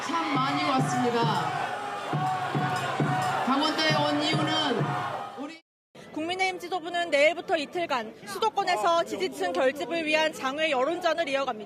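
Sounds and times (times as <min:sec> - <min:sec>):
large crowd booing and jeering at a party leader in Gangwon Province: 0:00.0 - 0:05.6
people shouting: 0:00.0 - 0:05.6
speech: 0:00.8 - 0:02.4, 0:06.8 - 0:11.6.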